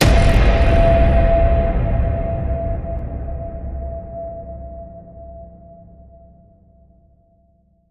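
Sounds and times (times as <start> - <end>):
horror hit scrunch: 0.0 - 5.2.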